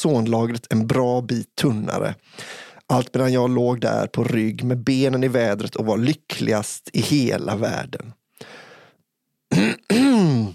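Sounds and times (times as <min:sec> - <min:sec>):
speech: 0:00.0 - 0:08.6
person clearing throat: 0:09.5 - 0:10.5
person coughing with strained throaty rasps: 0:09.5 - 0:10.5.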